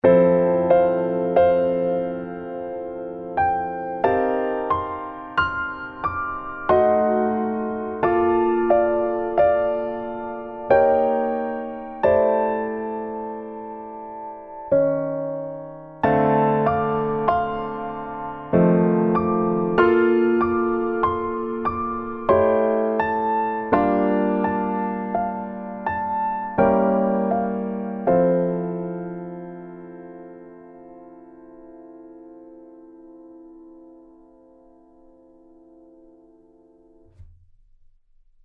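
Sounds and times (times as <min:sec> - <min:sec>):
piano piece: 0:00.0 - 0:37.4.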